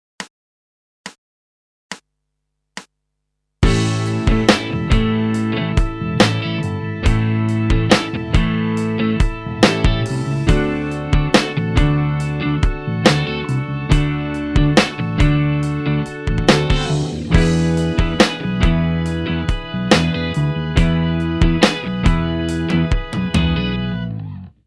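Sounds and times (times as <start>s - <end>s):
basic pentatonic mixed scale guitar phrase using chord tones: 3.6s - 24.6s.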